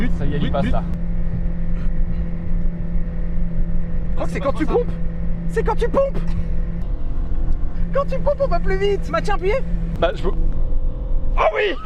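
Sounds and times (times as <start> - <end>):
small motor running during an experiment: 0.0 - 11.3
speech: 0.4 - 1.0, 4.2 - 6.5, 7.9 - 10.4, 11.4 - 11.8.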